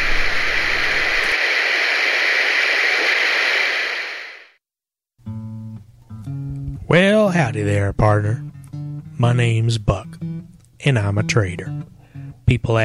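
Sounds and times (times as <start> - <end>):
loud steady radio static hiss: 0.0 - 4.6
speech: 6.9 - 8.5, 9.2 - 10.1, 10.8 - 11.9, 12.5 - 12.8.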